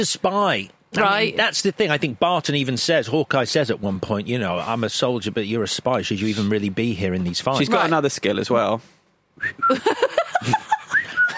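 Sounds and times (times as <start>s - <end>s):
speech: 0.0s - 10.6s
person whistling short sliding notes: 9.4s - 9.8s, 10.9s - 11.3s.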